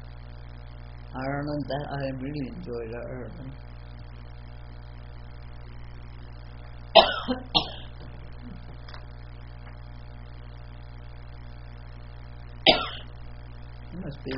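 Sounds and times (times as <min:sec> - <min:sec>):
quiet room hum: 0:00.0 - 0:14.3
speech: 0:01.2 - 0:03.8, 0:07.3 - 0:07.6
person coughing: 0:07.0 - 0:08.7, 0:12.7 - 0:13.1.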